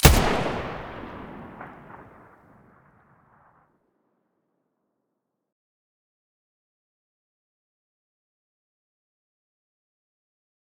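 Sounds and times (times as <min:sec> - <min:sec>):
MDR rifle muzzle gunshots: 0:00.0 - 0:02.8.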